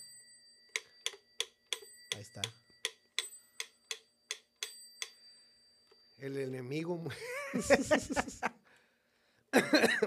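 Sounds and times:
wind-up mechanical metronome ticking: 0:00.7 - 0:06.7
speech: 0:02.2 - 0:02.6, 0:06.2 - 0:08.6, 0:09.7 - 0:10.0
laughter: 0:07.1 - 0:08.6.

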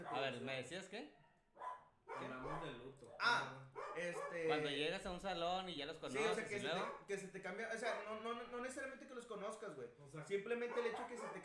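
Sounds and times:
faint dog yelp: 0:00.0 - 0:00.4, 0:01.1 - 0:04.6, 0:10.6 - 0:11.4
single sharp dog bark: 0:00.0 - 0:00.4, 0:01.2 - 0:02.8, 0:03.7 - 0:04.6, 0:06.7 - 0:07.1, 0:07.8 - 0:08.2, 0:10.6 - 0:11.4
speech: 0:00.0 - 0:01.2, 0:02.2 - 0:11.4.

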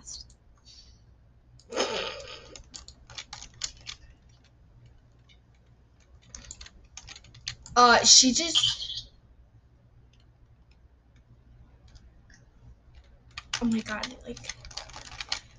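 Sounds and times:
low hum: 0:00.0 - 0:15.5
typing on a computer keyboard: 0:02.4 - 0:07.8, 0:10.1 - 0:15.5
speech: 0:07.8 - 0:08.8, 0:13.8 - 0:14.6.

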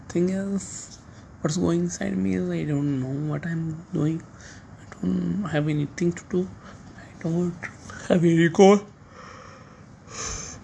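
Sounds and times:
speech: 0:00.1 - 0:08.9
breathy yawn: 0:10.1 - 0:10.6.

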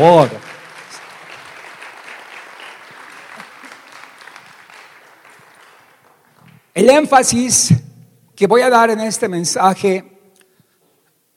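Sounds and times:
speech: 0:00.0 - 0:00.4, 0:06.8 - 0:07.8, 0:08.4 - 0:10.1
audience applause: 0:00.0 - 0:06.7.

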